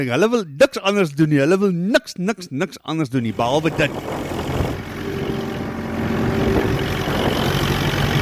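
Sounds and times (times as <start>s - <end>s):
speech: 0.0s - 4.4s
tractor engine droning while ploughing: 3.3s - 8.2s.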